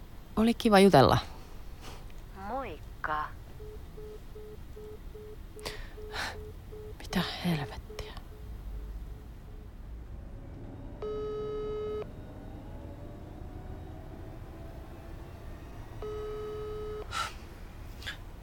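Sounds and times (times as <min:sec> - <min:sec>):
low rumble: 0:00.0 - 0:18.4
speech: 0:00.4 - 0:01.3, 0:07.1 - 0:07.8
telephone busy signal after a hang-up: 0:03.6 - 0:08.5, 0:11.0 - 0:12.1, 0:16.0 - 0:17.1.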